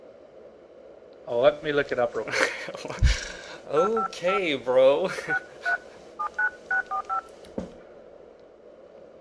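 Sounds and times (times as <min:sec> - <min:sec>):
speech: 0:01.3 - 0:05.5
touch-tone beeps of a phone number being keyed in: 0:04.0 - 0:04.2, 0:05.3 - 0:07.3.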